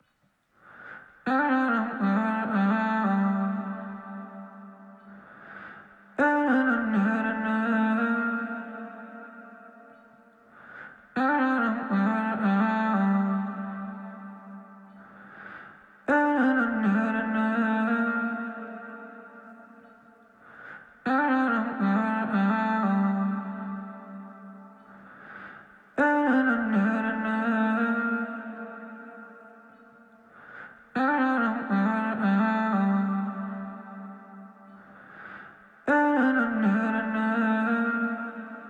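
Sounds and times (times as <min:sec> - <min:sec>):
person singing in G minor: 0:01.3 - 0:10.2, 0:10.8 - 0:38.6.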